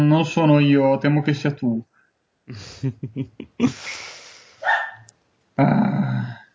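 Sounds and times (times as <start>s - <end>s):
speech: 0.0s - 1.9s, 2.5s - 4.2s, 5.6s - 6.2s
laughter: 2.5s - 4.2s
dog barking with short sharp yaps and growling barks: 4.6s - 5.1s.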